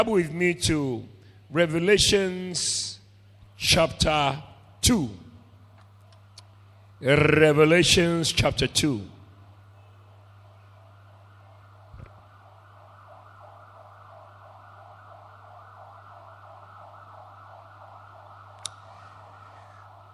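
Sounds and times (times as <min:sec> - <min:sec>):
speech: 0:00.0 - 0:03.0, 0:03.6 - 0:05.2, 0:07.0 - 0:09.1
constant low hum: 0:09.1 - 0:20.1
ambulance siren warbling: 0:09.4 - 0:20.1.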